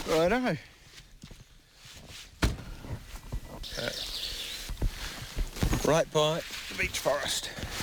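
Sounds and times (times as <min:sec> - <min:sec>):
speech: 0:00.1 - 0:00.7, 0:05.9 - 0:07.8
heavy thumps: 0:02.4 - 0:03.6
mohua yellowhead sharp rapid contact chatter by a beech forest: 0:03.6 - 0:05.2.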